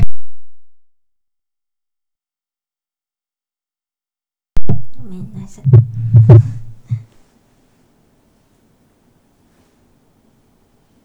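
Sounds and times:
person clearing throat: 4.9s - 7.0s
speech: 5.0s - 6.6s.

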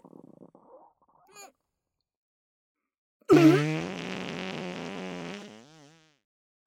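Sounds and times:
loud drawn-out buzzing fart: 3.3s - 6.2s.

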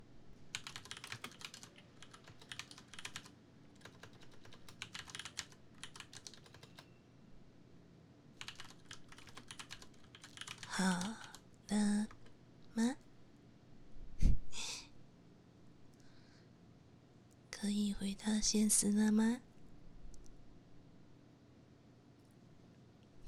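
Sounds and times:
typing on a computer keyboard: 0.5s - 7.0s, 8.4s - 12.3s
speech: 18.2s - 19.5s.

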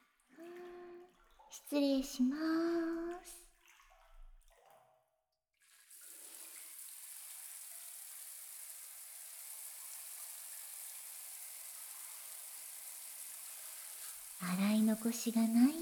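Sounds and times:
speech: 1.5s - 3.4s, 14.9s - 15.8s
shower water spraying while rinsing: 6.0s - 15.8s.

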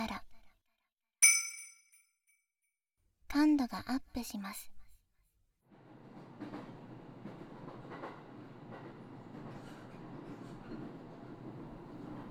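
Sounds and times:
speech: 3.3s - 4.8s
train rumbling on rails: 5.7s - 12.2s.

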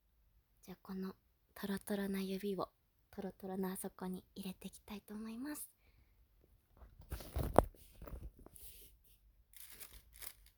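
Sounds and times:
speech: 0.7s - 5.8s
plastic bag being squished and crinkled: 7.0s - 8.6s, 9.6s - 10.5s.

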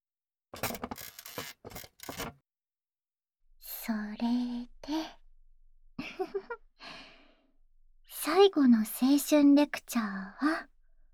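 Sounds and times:
chair creaking as someone sits down: 0.6s - 2.4s
speech: 3.9s - 5.1s, 8.5s - 10.7s.

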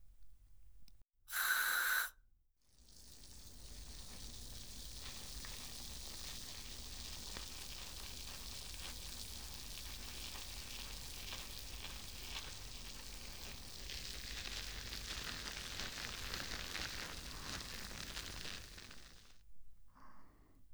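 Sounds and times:
carbonated shampoo foam spray burst during a scalp wash: 1.3s - 2.1s
carbonated shampoo foam fizzing and crackling with tiny pops: 2.8s - 19.4s.

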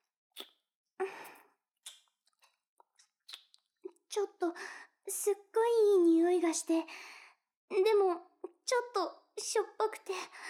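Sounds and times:
wet licking and sucking on fingers: 0.4s - 0.6s, 1.3s - 3.7s
speech: 4.2s - 7.1s, 7.7s - 10.4s.

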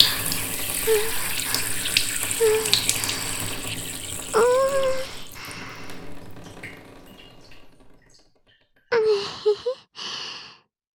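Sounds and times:
stream of urine splashing onto a person's body: 0.0s - 8.4s
soft breathy sighs: 9.0s - 10.7s.

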